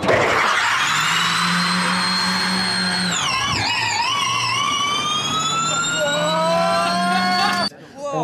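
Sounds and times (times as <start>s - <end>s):
electric race car motor whine accelerating: 0.2s - 7.7s.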